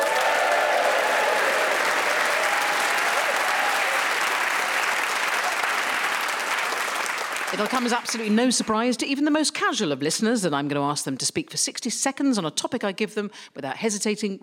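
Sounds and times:
studio audience whooping: 0.0 - 7.8
studio audience clapping: 0.0 - 9.0
speech: 7.5 - 14.4.

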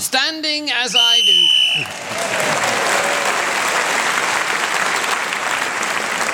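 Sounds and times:
speech: 0.0 - 2.8
room full of people applauding: 1.5 - 6.3.

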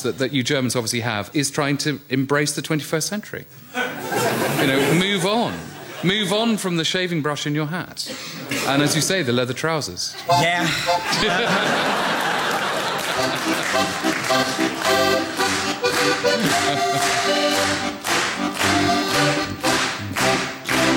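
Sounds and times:
speech: 0.0 - 3.8, 4.4 - 12.3, 13.2 - 14.4, 16.2 - 18.1
laughter: 3.7 - 6.1, 10.1 - 14.0, 16.3 - 17.2
scattered audience clapping: 11.7 - 20.9.

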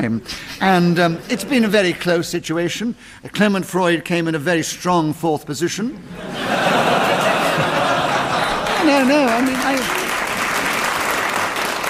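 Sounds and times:
speech: 0.0 - 7.0, 8.8 - 10.0
audience chuckles: 6.2 - 9.0
studio audience applause: 7.1 - 11.8.

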